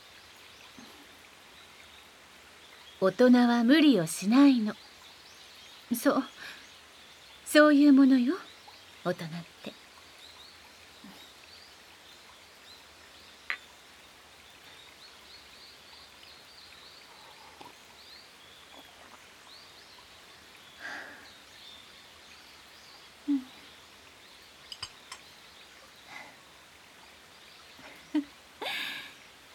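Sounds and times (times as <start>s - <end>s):
babbling brook: 0.0s - 29.5s
rustling leaves of trees: 0.0s - 29.5s
faint scattered birdsong chirps: 0.1s - 29.5s
speech: 3.0s - 4.9s, 5.9s - 6.6s, 7.5s - 9.8s.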